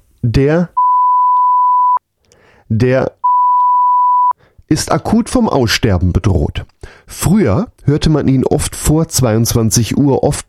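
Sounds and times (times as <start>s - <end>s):
speech: 0.4s - 0.8s, 2.7s - 3.2s, 4.7s - 10.4s
censor beep: 0.8s - 2.0s, 3.2s - 4.4s.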